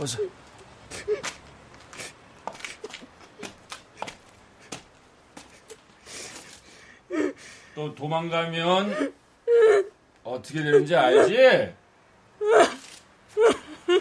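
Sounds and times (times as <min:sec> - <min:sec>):
person sobbing with gasps and whimpering cries: 0:00.0 - 0:01.3, 0:07.1 - 0:07.6, 0:08.8 - 0:10.0, 0:10.6 - 0:11.5, 0:12.4 - 0:12.8, 0:13.4 - 0:13.9
speech: 0:00.0 - 0:01.4, 0:07.8 - 0:09.2, 0:10.3 - 0:11.8.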